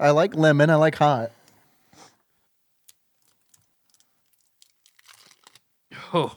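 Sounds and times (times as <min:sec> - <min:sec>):
speech: 0:00.0 - 0:01.4, 0:06.1 - 0:06.3
plastic package of lemon-flavored hot candy with chewing gum crinkling open: 0:02.8 - 0:05.7.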